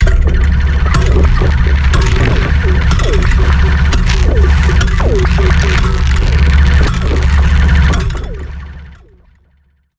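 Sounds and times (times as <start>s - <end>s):
robot moving: 0.9s - 8.6s.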